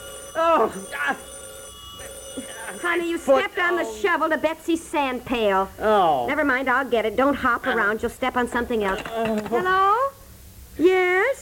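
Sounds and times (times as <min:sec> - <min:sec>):
telephone ringing in warbling bursts: 0:00.0 - 0:05.4, 0:08.5 - 0:09.7
speech: 0:00.4 - 0:01.4, 0:02.7 - 0:10.0.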